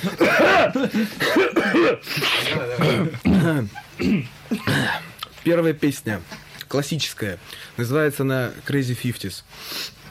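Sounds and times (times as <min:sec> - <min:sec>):
people coughing: 0:00.0 - 0:05.2
throat clearing: 0:00.0 - 0:05.3
speech: 0:00.0 - 0:10.0.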